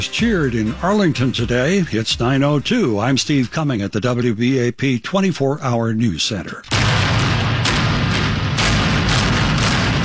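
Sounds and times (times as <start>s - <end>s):
speech: 0.0s - 7.0s
demolition blasts imploding a 19-story hotel: 6.7s - 10.0s.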